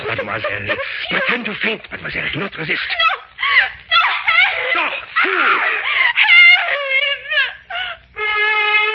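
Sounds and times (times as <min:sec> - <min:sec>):
laughter: 0:00.0 - 0:08.9
speech: 0:00.1 - 0:03.1, 0:05.2 - 0:05.9
woman screaming frantically: 0:03.0 - 0:08.9.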